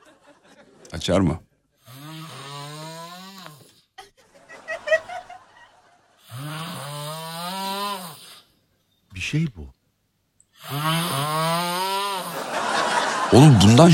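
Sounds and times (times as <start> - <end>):
laughter: 0.0 - 0.9, 4.0 - 6.2, 12.3 - 13.9
speech: 0.9 - 1.5, 9.3 - 9.8, 13.3 - 13.9
man snoring at night: 1.8 - 3.9, 6.2 - 8.5, 10.6 - 12.6.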